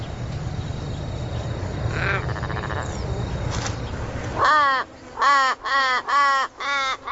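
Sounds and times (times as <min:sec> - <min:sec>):
steady rumbling noise: 0:00.0 - 0:05.7
crows calling by a road in Australia, scavenging carrion: 0:01.9 - 0:02.9, 0:04.4 - 0:07.1.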